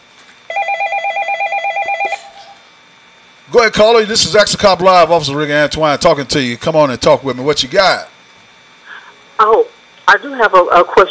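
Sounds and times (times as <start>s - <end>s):
telephone ringing with an incoming call: 0.5s - 2.6s
speech: 3.5s - 8.1s, 9.4s - 11.0s.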